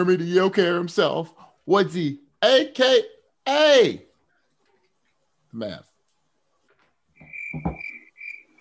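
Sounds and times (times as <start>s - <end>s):
speech: 0.0s - 4.1s, 5.5s - 5.9s, 7.5s - 7.8s
crickets chirping in a high-pitched trill: 7.2s - 8.5s.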